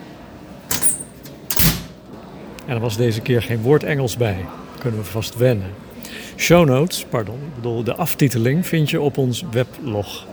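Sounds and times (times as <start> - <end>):
1954 steel wall cabinet doors scraping and clanking in a living room: 0.7 - 2.0
speech: 2.7 - 10.3.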